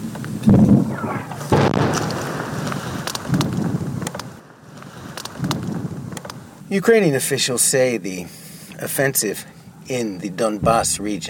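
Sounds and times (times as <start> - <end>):
wind noise: 0.0 - 6.7
Russian mortar fire on a front line near Barvinkove in eastern Ukraine: 0.4 - 6.5
speech: 6.7 - 11.2.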